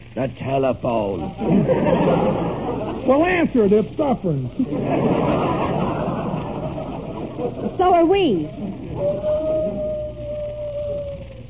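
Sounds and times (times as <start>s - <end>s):
speech: 0.2s - 5.8s, 7.4s - 9.9s
laughter: 1.1s - 3.6s, 4.5s - 10.2s
wolf howling: 8.4s - 11.4s.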